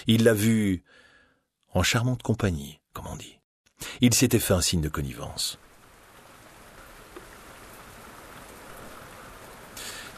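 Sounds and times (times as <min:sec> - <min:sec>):
speech: 0:00.0 - 0:01.1, 0:01.7 - 0:05.6
steady rain pouring down: 0:04.1 - 0:10.1.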